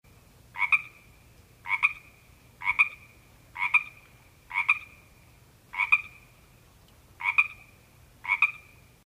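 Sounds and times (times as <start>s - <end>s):
frog croaking: 0.5s - 1.0s, 1.6s - 5.0s, 5.7s - 6.2s, 7.2s - 8.8s.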